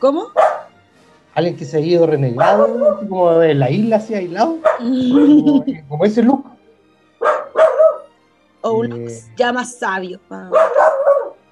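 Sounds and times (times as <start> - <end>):
speech: 0.0 - 0.6, 1.4 - 6.5, 8.6 - 10.9
dog barking: 0.3 - 0.7, 2.3 - 3.2, 4.6 - 4.9, 7.2 - 8.1, 10.5 - 11.4
laughter: 4.8 - 6.3.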